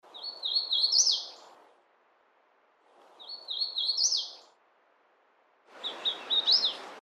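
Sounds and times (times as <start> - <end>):
hooded warbler: 0.1 - 1.5, 3.1 - 4.5, 5.8 - 6.9.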